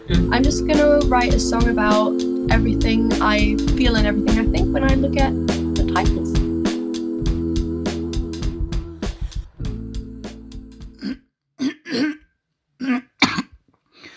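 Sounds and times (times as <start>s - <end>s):
music: 0.0s - 11.0s
speech: 0.1s - 6.4s
person clearing throat: 11.0s - 13.6s.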